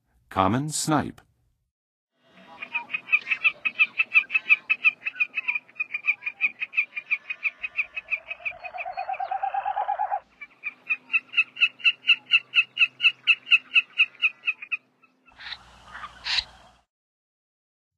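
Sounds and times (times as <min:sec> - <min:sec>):
common snipe calling in the western USA: 0:02.4 - 0:16.6.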